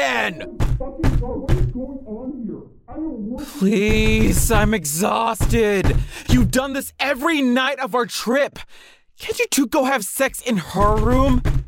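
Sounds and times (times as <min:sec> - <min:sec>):
speech: 0:00.1 - 0:11.6
heavy fist pounding on a hotel room door: 0:00.6 - 0:01.8, 0:03.9 - 0:04.8, 0:05.4 - 0:06.6, 0:10.9 - 0:11.6.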